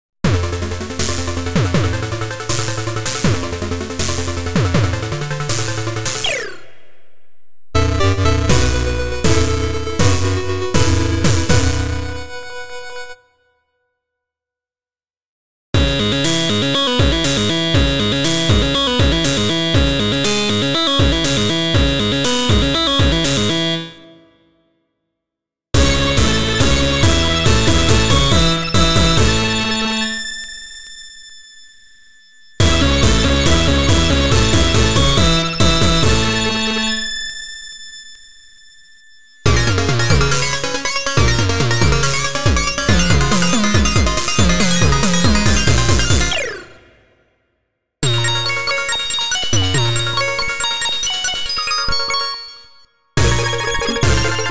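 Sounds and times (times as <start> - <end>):
8-bit stabs: 0.3 - 6.5, 7.8 - 12.6, 15.8 - 24.3, 25.8 - 30.3, 32.6 - 37.2, 39.5 - 47.0, 48.0 - 51.6, 53.2 - 54.4.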